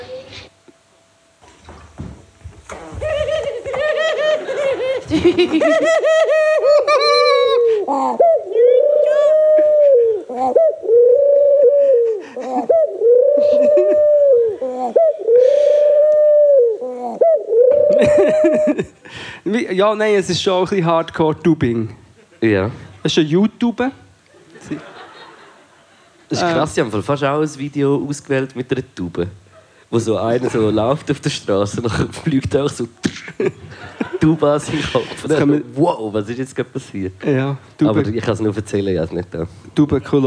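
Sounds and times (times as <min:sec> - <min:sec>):
pigeon cooing loudly: 0:00.0 - 0:00.6, 0:01.5 - 0:19.3
laughter: 0:02.6 - 0:10.6, 0:11.9 - 0:15.8, 0:17.8 - 0:19.3, 0:24.3 - 0:26.8, 0:29.5 - 0:31.1, 0:31.9 - 0:35.7
speech: 0:05.1 - 0:07.0, 0:07.9 - 0:08.3, 0:18.0 - 0:24.0, 0:24.7 - 0:24.9, 0:26.3 - 0:33.6, 0:34.2 - 0:40.2.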